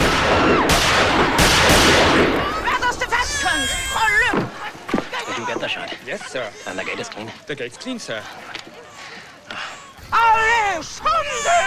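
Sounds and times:
gunshots fired by a cameraman during filming: 0:00.0 - 0:03.0
laughter: 0:02.2 - 0:11.6
speech: 0:07.2 - 0:08.6, 0:10.1 - 0:11.6.

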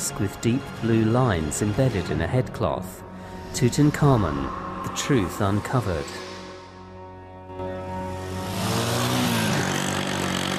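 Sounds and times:
speech: 0:00.1 - 0:06.2
classic motorbike engine ridden along a road in sandy hills in Egypt: 0:03.2 - 0:10.5.

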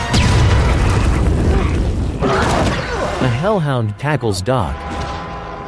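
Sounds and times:
explosive thrown onto the ground exploding with roaring rumble: 0:00.1 - 0:02.2
speech: 0:03.5 - 0:04.9.

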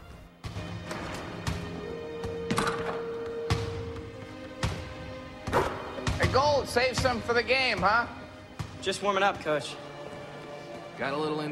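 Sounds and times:
basketball thumps from a lone player shooting hoops on a court: 0:00.4 - 0:07.9, 0:08.6 - 0:08.8
speech: 0:06.3 - 0:08.2, 0:08.8 - 0:09.8, 0:11.0 - 0:11.4.

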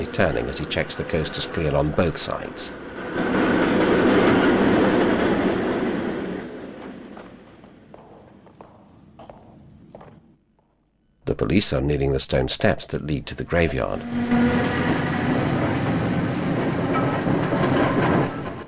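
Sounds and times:
speech: 0:00.0 - 0:03.5, 0:11.4 - 0:15.2
heavy freight train rattling past on the rails: 0:00.0 - 0:09.0, 0:13.6 - 0:18.6.

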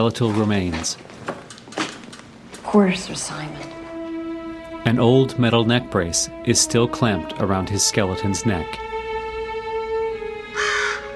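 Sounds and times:
speech: 0:00.0 - 0:01.3, 0:02.7 - 0:03.8, 0:04.8 - 0:09.0
faint steady tonal background: 0:02.5 - 0:11.1
raven giving a harsh hoarse caw: 0:10.3 - 0:11.1.

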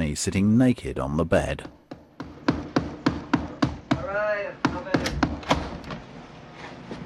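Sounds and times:
speech: 0:00.2 - 0:01.8
knocking on a door: 0:01.6 - 0:05.8.

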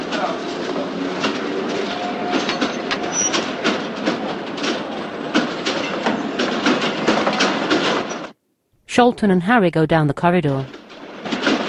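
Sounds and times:
train rolling out of the station: 0:00.0 - 0:08.4, 0:10.6 - 0:11.6
train wheels clacking over rail joints: 0:00.0 - 0:08.4, 0:10.7 - 0:11.6
speech: 0:09.0 - 0:10.8.

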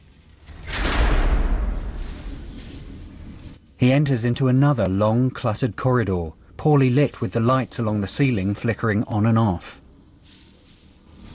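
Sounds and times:
large heavy double door pushed open: 0:00.5 - 0:02.8
speech: 0:03.8 - 0:09.8.

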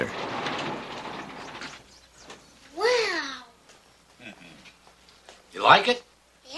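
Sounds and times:
garage door sliding open: 0:00.0 - 0:02.5
speech: 0:05.7 - 0:06.1.

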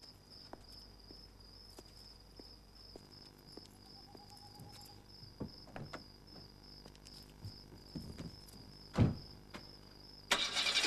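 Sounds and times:
crickets chirping in the dark: 0:00.0 - 0:10.8
car engine cranking and catching: 0:10.3 - 0:10.8.

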